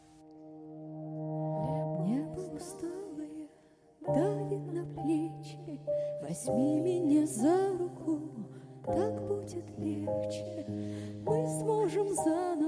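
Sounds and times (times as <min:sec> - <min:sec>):
instrumental song intro with droning chord and gliding melody: 0:00.0 - 0:05.4
speech: 0:06.3 - 0:07.6, 0:08.9 - 0:12.6.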